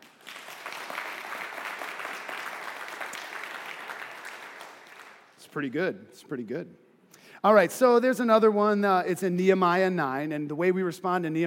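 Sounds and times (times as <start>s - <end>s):
audience clapping hands: 0.0s - 5.4s
speech: 5.5s - 6.8s, 7.4s - 11.4s.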